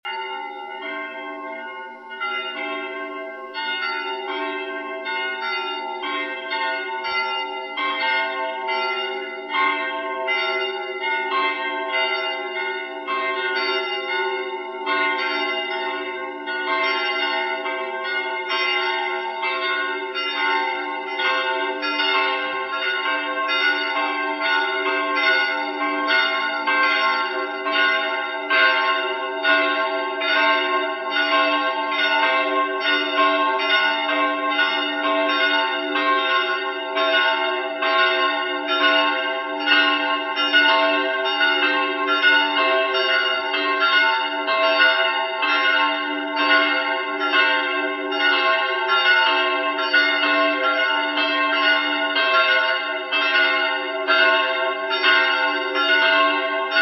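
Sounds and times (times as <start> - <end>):
bells in Johannisburg East Prussia: 0.0 - 56.8.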